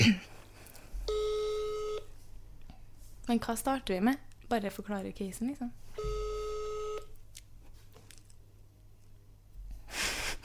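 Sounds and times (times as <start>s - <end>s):
telephone tone beep: 1.1s - 2.1s, 6.0s - 7.1s
speech: 3.3s - 6.1s.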